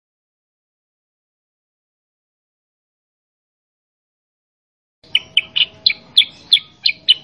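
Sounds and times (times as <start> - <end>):
Sooty-headed bulbul song: 5.0 - 7.2.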